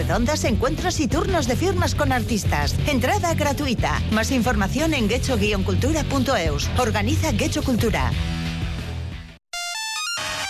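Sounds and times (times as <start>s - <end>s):
speech: 0.1s - 8.4s
mobile phone ringtones going off chaotically: 9.6s - 10.4s.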